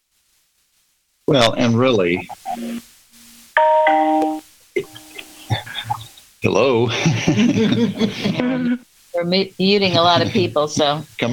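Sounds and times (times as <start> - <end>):
laughter: 1.3 - 2.6, 4.8 - 8.8, 9.7 - 11.3
speech: 1.3 - 2.9, 6.4 - 11.3
doorbell ringing with two chiming notes: 3.6 - 5.1.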